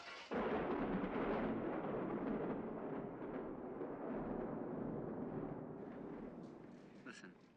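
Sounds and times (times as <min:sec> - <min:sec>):
thunder rumbling in a thunderstorm: 0:00.3 - 0:07.5.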